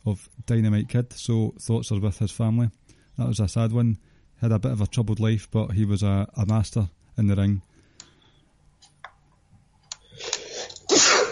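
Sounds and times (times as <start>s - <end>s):
speech: 0.0s - 7.7s
faint clicks and ticks: 6.4s - 10.1s
person sneezing: 10.2s - 11.3s.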